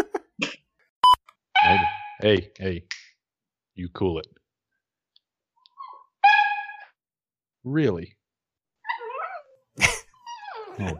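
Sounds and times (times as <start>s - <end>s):
puppy yipping: 1.6s - 2.2s, 5.7s - 7.0s, 8.8s - 10.8s
speech: 2.2s - 3.0s, 3.8s - 4.4s, 7.6s - 8.2s, 10.8s - 10.9s
puppy whining high-pitched: 5.6s - 7.0s, 8.8s - 10.9s.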